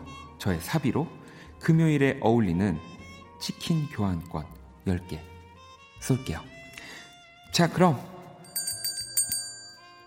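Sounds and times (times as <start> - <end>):
speech: 0.4 - 5.3, 6.0 - 6.6, 7.5 - 8.1
bright bell chiming: 8.4 - 10.0.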